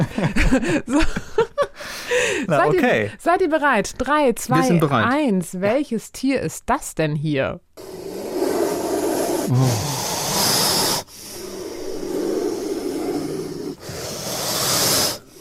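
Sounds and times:
laughter: 0.0s - 1.7s
speech: 0.0s - 8.1s, 9.5s - 9.9s
cobra hissing in loud breathy bursts: 7.8s - 15.3s.

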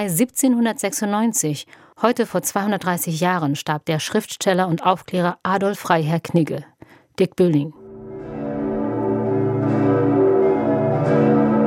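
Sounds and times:
speech: 0.0s - 7.8s
large cathedral church bells ringing: 7.8s - 11.6s.

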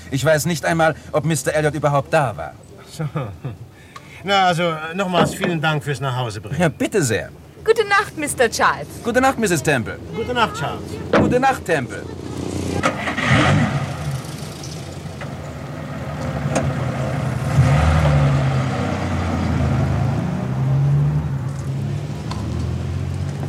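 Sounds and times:
speech: 0.1s - 3.6s, 4.2s - 12.2s
car engine starting and revving as the car pulls off: 12.2s - 23.4s.

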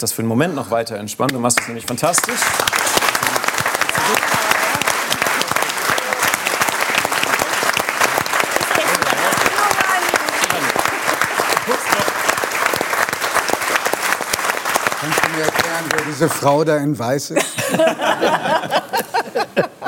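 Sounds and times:
speech: 0.0s - 3.4s, 16.2s - 19.0s
indoor studio audience applause: 1.6s - 16.6s
laughter: 2.7s - 12.3s, 17.3s - 19.8s
faint voices and cheers: 3.2s - 12.4s.

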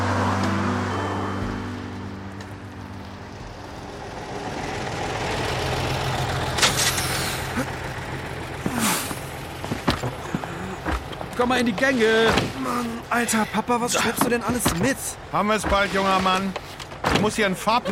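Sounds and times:
school bus engine idling: 0.0s - 15.6s
school bus air brakes releasing with hissing: 6.6s - 7.6s
speech: 11.4s - 17.9s.

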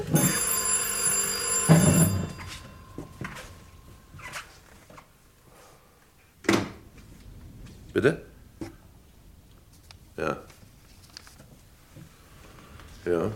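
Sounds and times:
telephone bell ringing: 0.0s - 4.6s
speech: 8.0s - 8.3s.

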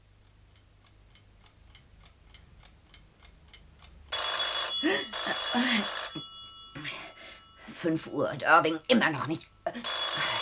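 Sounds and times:
telephone bell ringing with a metallic jangle: 4.1s - 7.8s, 9.7s - 10.4s
speech: 7.8s - 9.9s.

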